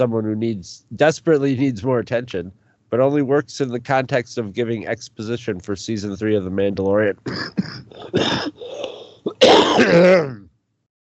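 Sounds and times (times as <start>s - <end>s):
speech: 0.0s - 10.4s
loud cough: 7.3s - 10.5s
raspy vocal harrumph: 7.3s - 10.5s
throat clearing: 7.3s - 10.5s.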